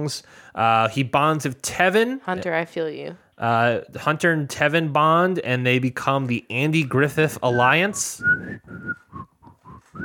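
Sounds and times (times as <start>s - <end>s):
speech: 0.0s - 9.0s
breathy faltering whistle of a tune: 7.4s - 10.0s.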